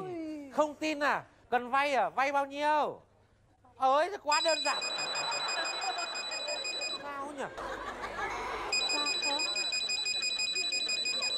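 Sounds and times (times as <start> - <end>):
speech: 0.6 - 3.1, 3.8 - 5.1, 7.4 - 8.0
phone in use on a call ringing with repeating electronic trill: 4.3 - 7.0, 8.7 - 11.3
laughter: 4.5 - 11.3.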